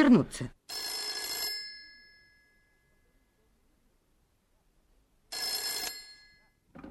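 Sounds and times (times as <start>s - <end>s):
speech: 0.0s - 0.6s
telephone bell ringing in loud bright bursts: 0.7s - 3.0s, 5.3s - 6.6s.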